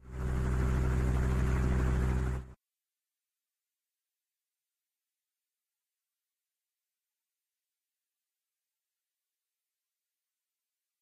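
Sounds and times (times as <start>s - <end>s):
helicopter heard indoors: 0.0s - 2.6s.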